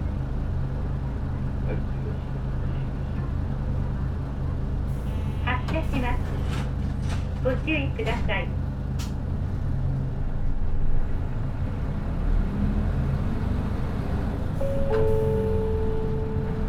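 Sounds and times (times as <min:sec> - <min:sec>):
express bus engine idling inside the cabin: 0:00.0 - 0:16.6
speech: 0:07.4 - 0:08.6
short electronic chime-like tones: 0:14.6 - 0:16.6.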